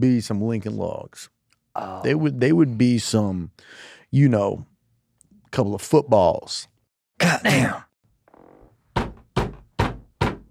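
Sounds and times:
speech: 0.0s - 4.7s, 5.5s - 7.8s
knocking on a door: 8.9s - 10.4s.

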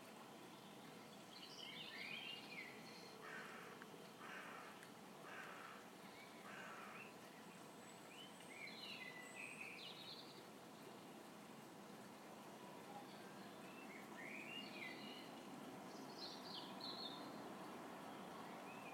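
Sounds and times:
outdoor noise: 0.0s - 18.9s
songbird chirps: 0.0s - 18.9s
crows cawing: 3.2s - 5.8s, 6.5s - 7.0s.

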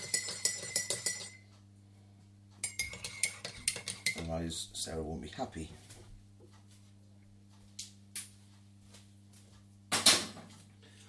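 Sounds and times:
spoon clinking against a cup stirring sugar into tea: 0.0s - 1.5s, 2.6s - 4.3s
speech: 4.3s - 5.8s.

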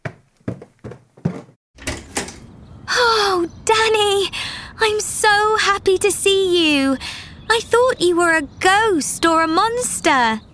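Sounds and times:
front door swinging open with a scraping rush: 0.9s - 2.7s
speech: 3.9s - 10.5s.

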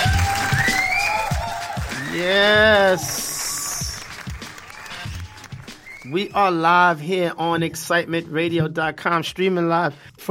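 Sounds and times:
audience applause: 0.0s - 6.2s
crowd noise: 0.0s - 6.6s
speech: 2.2s - 3.2s, 6.1s - 10.2s.

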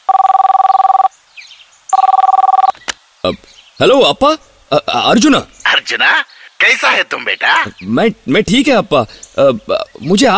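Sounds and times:
warbling ringback tone from a telephone on an outgoing call: 0.0s - 1.1s, 2.0s - 2.7s
speech: 3.3s - 10.3s.

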